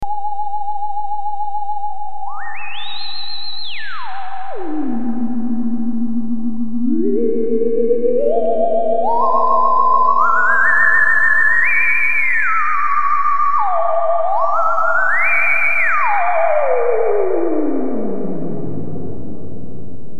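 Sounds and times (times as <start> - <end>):
theremin: 0.0 - 20.1
blue noise: 4.4 - 8.4.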